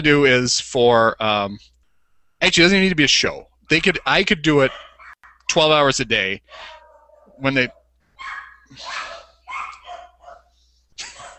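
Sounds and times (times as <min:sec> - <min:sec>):
speech: 0:00.0 - 0:01.7, 0:02.4 - 0:04.9, 0:05.5 - 0:06.8, 0:07.4 - 0:09.2
faint low hum: 0:00.0 - 0:11.3
several dogs barking: 0:03.7 - 0:11.3.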